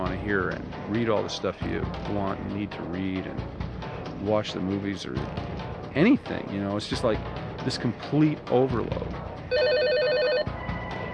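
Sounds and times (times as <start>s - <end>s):
speech: 0.3s - 9.9s
telephones ringing with electronic warbling tone: 9.5s - 10.5s.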